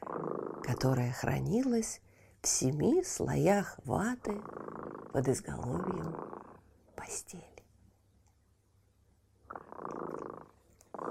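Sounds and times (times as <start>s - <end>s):
cat purring: 0.0s - 7.3s, 9.4s - 11.0s
speech: 0.6s - 6.2s, 7.0s - 7.5s.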